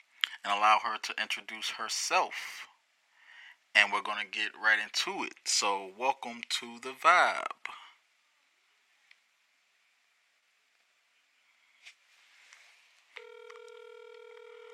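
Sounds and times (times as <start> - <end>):
speech: 0.4 - 2.7, 3.8 - 7.8
phone dialing beeps: 13.2 - 14.7.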